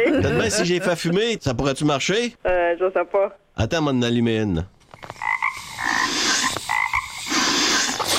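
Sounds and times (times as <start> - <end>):
speech: 0.2 - 5.2
dense chorus of frogs croaking: 5.0 - 8.0.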